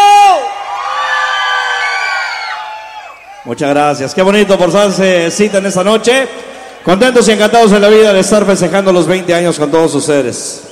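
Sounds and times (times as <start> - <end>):
audience at a night concert shouting and cheering: 0.0 - 7.4
speech: 3.5 - 10.6.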